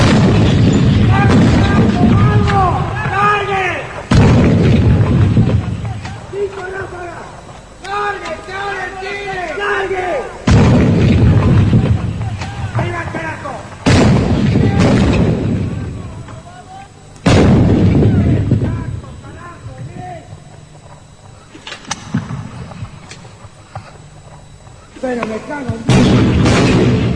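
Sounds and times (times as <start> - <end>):
guns or cannons firing on command: 0.0 - 6.9, 10.3 - 16.3, 17.2 - 20.1, 25.9 - 27.1
people shouting: 1.1 - 4.0, 7.8 - 10.4.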